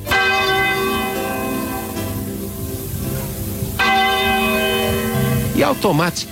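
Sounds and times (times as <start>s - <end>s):
church tower clock bell striking midnight: 0.0s - 6.3s
speech: 5.6s - 6.3s.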